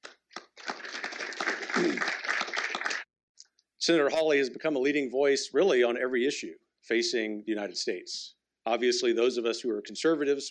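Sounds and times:
in-person audience applause at an anniversary event: 0.0s - 3.1s
speech: 1.8s - 2.2s, 3.9s - 10.4s.

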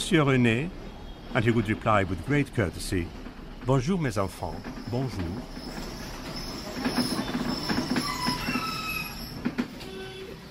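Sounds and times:
tram rumbling along its rails: 0.0s - 10.4s
speech: 0.1s - 5.9s
tram metal wheels squealing and screeching: 4.2s - 10.4s.

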